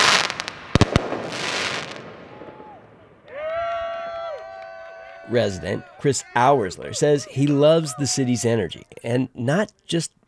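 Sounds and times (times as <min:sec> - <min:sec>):
celebratory gunfire in the streets of Kansas City: 0:00.0 - 0:02.8
celebratory fireworks in the streets of Kansas City: 0:00.0 - 0:03.8
noisy outdoor crowd dancing and cheering in the streets: 0:01.7 - 0:08.8
speech: 0:05.3 - 0:10.2.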